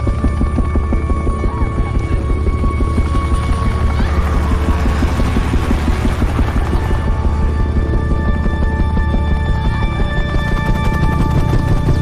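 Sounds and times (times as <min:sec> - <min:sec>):
rescue helicopter rotor thump and engine drone: 0:00.0 - 0:11.9.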